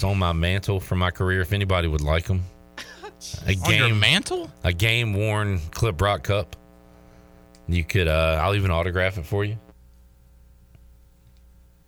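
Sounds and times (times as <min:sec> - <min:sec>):
speech: 0:00.0 - 0:02.6, 0:03.2 - 0:06.6, 0:07.7 - 0:09.6
low electrical hum on the line: 0:00.0 - 0:11.8
faint click: 0:10.7 - 0:11.5.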